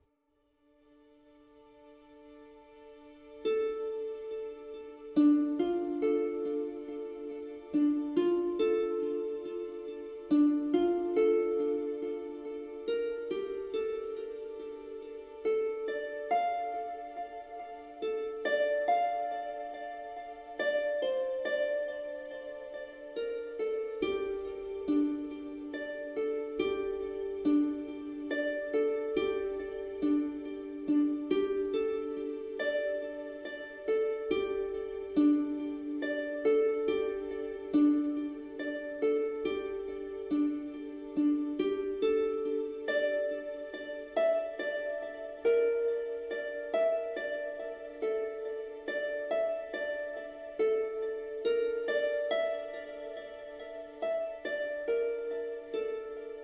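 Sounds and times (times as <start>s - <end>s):
light ambient fantasy RPG music: 1.0s - 56.4s.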